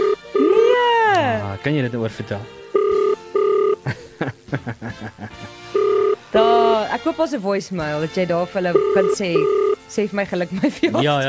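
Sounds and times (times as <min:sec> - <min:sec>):
telephone ringing unanswered: 0:00.0 - 0:00.8, 0:02.7 - 0:03.9, 0:05.7 - 0:07.0, 0:08.7 - 0:09.9
speech: 0:01.6 - 0:02.6, 0:03.8 - 0:11.2
people chuckling and snickering: 0:03.8 - 0:05.6.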